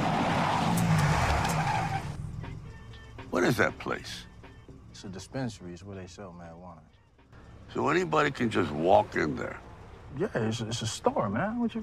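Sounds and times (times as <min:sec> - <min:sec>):
taxi cab tire skid from hard braking: 0:00.0 - 0:02.3
low taxi cab engine rumble: 0:00.0 - 0:11.8
speech: 0:03.4 - 0:04.3, 0:05.0 - 0:07.0, 0:07.7 - 0:11.8.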